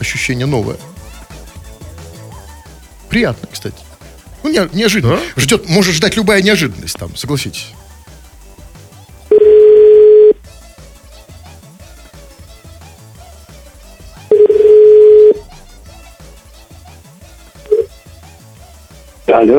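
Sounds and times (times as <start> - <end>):
speech: 0.0 - 0.9, 3.1 - 7.9
telephone call being dialed: 9.4 - 10.4, 14.4 - 15.4.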